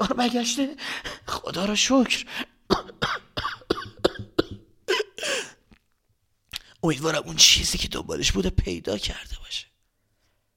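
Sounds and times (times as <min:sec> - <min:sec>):
speech: 0:00.0 - 0:02.9, 0:06.8 - 0:09.7
person coughing wearily: 0:02.7 - 0:05.6.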